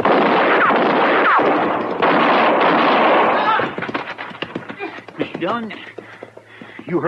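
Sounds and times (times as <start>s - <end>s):
gunshots from a young rider galloping past: 0.0s - 4.2s
speech: 5.5s - 5.9s.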